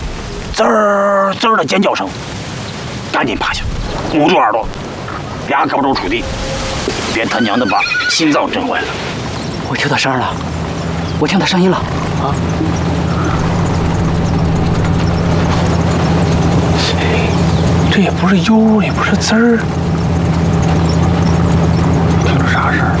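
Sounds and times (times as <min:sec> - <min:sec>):
car engine droning: 0:00.0 - 0:22.9
voices: 0:00.0 - 0:22.9.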